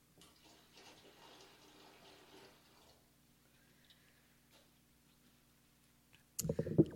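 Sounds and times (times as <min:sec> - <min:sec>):
water poured into a vessel in a ceremony: 0:00.2 - 0:03.0, 0:06.4 - 0:06.9
water splashing and gurgling: 0:06.4 - 0:06.9.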